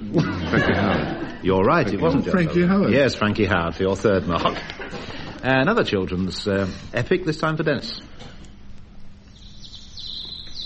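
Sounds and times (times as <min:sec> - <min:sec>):
laughter: 0:00.0 - 0:03.4, 0:04.0 - 0:05.4
speech: 0:00.1 - 0:08.1
birds singing: 0:09.0 - 0:10.6.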